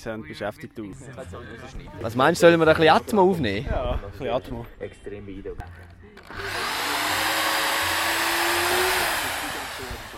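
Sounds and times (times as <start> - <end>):
speech: 0.0 - 6.8
whirring motor removing screws while a wine stand is dismantled: 6.2 - 10.1.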